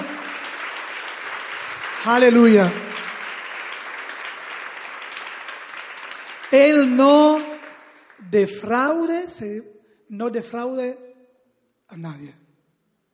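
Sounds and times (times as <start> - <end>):
crowd applauding loudly: 0.0 - 8.4
speech: 2.0 - 2.8, 6.5 - 7.5, 8.3 - 11.0, 11.9 - 12.4.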